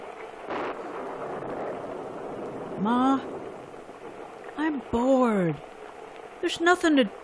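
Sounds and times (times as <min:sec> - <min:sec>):
rumbling thunder: 0:00.0 - 0:05.0
steady rain on a rainy day at home: 0:00.0 - 0:07.2
speech: 0:02.8 - 0:03.4, 0:04.6 - 0:05.7, 0:06.4 - 0:07.2.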